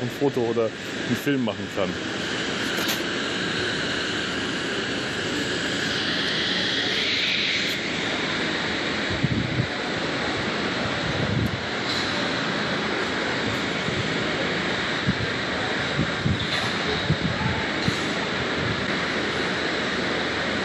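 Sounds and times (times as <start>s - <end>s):
speech: 0.0s - 2.3s
high helicopter whine: 0.0s - 20.6s
pink, orange and red helicopter engine and rotor roaring on a roof: 0.0s - 20.6s.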